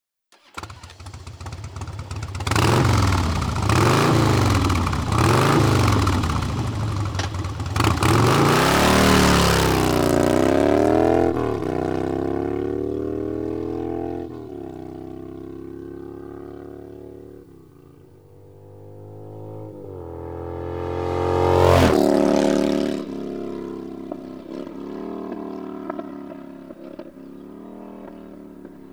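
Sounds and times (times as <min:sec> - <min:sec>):
Harley Davidson Twin Cam 88 motorcycle engine: 0:00.3 - 0:28.9.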